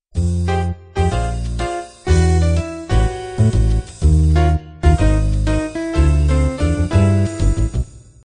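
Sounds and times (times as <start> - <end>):
jazz quintet playing intro: 0.4 - 7.7.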